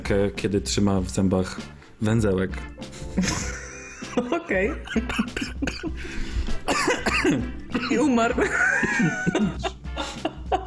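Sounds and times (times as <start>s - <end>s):
speech: 0.1s - 3.6s, 4.2s - 6.3s, 7.2s - 9.7s
laughter: 3.0s - 6.0s, 8.3s - 10.6s
person coughing: 5.1s - 6.0s, 6.7s - 8.1s.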